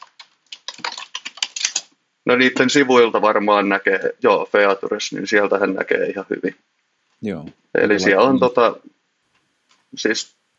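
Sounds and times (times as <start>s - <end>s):
rapid typing on a computer keyboard with plastic keys: 0.0s - 1.9s
speech: 2.3s - 9.0s, 9.9s - 10.4s.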